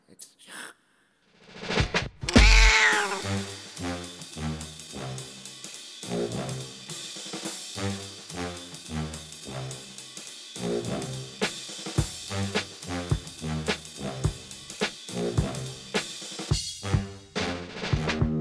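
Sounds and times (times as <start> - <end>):
loud drawn-out cat meow: 2.3 - 3.3
steady rhythmic musical backing: 2.3 - 18.3.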